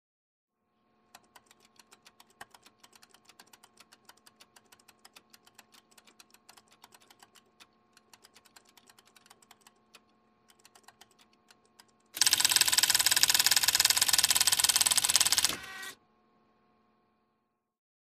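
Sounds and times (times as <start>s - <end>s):
printer scanning: 12.2s - 16.0s.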